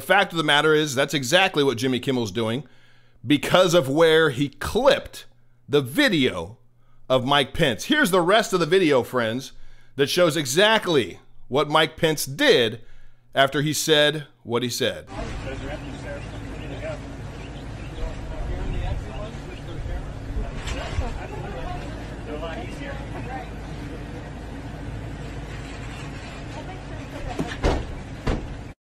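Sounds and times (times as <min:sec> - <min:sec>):
speech: 0:00.0 - 0:15.9
murmur of indistinct voices: 0:15.1 - 0:24.8
doors sliding and thudding shut: 0:27.2 - 0:28.7
sharp knocks: 0:27.4 - 0:28.6.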